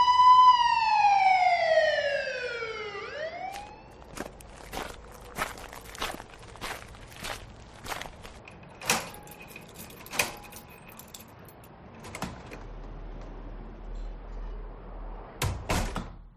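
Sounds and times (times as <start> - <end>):
police siren wailing: 0.0 - 5.6
steady footsteps: 3.4 - 11.2.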